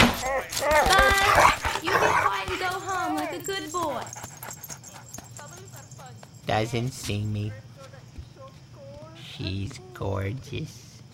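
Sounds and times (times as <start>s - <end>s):
dog barking, yipping and whining excitedly: 0.0s - 3.4s
speech: 6.5s - 7.7s, 9.4s - 10.8s.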